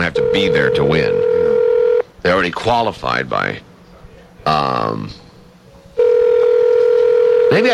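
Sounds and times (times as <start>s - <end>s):
telephone ringing tone on an unanswered call: 0.0s - 2.0s, 6.0s - 7.7s
speech: 0.4s - 1.3s, 2.2s - 3.7s, 4.4s - 5.2s, 7.5s - 7.7s.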